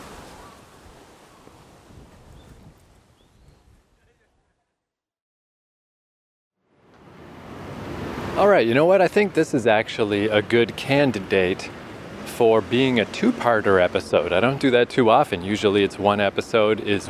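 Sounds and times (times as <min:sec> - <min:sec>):
small river rushing water: 0:00.0 - 0:02.7, 0:07.0 - 0:17.0
gusty wind buffeting the microphone: 0:00.0 - 0:04.0
speech: 0:08.4 - 0:17.0.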